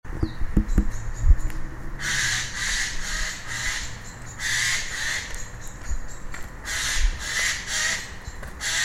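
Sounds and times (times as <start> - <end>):
low rumbling background noise: 0.1 - 8.8
Eurasian jay rasping calls, Garrulus glandarius: 2.0 - 8.8.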